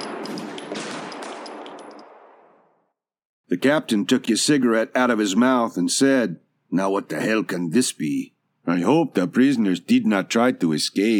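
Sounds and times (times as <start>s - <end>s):
volley of gunshots: 0.0s - 2.7s
speech: 3.5s - 11.1s.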